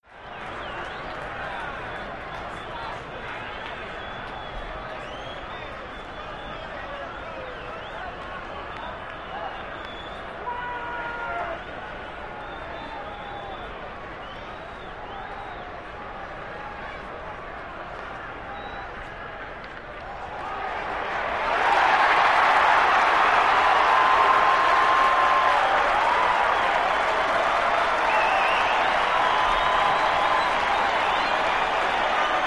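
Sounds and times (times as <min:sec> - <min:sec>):
sports arena crowd yelling and cheering: 0:00.0 - 0:32.4.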